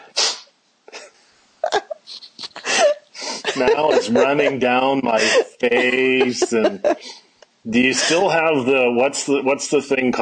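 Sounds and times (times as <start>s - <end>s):
person sneezing forcefully: 0.0s - 0.5s
laughter: 1.6s - 7.2s, 7.8s - 8.4s
speech: 3.6s - 10.2s.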